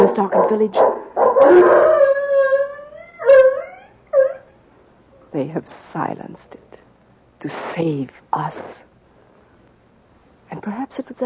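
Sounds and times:
dog barking and howling in a darkened village: 0:00.0 - 0:04.5
speech: 0:00.5 - 0:02.0, 0:05.4 - 0:06.7, 0:07.4 - 0:08.9, 0:10.5 - 0:11.2.

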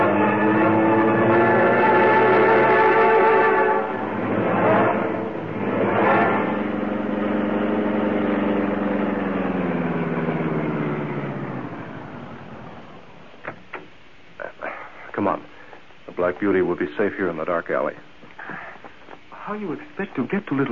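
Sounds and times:
car engine droning: 0:00.0 - 0:13.5
speech: 0:16.4 - 0:18.1, 0:19.5 - 0:20.6.

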